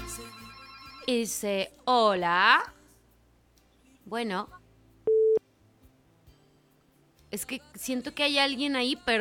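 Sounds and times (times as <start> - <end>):
telephone ringing for an incoming call: 0.3 - 1.1
speech: 1.1 - 2.8, 4.1 - 4.6, 7.3 - 9.1.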